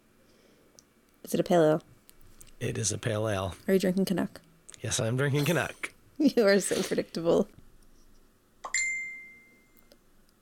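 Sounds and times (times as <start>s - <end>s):
speech: 1.3s - 1.9s, 2.6s - 7.6s
notification chime from a nearly dead phone: 8.7s - 9.7s.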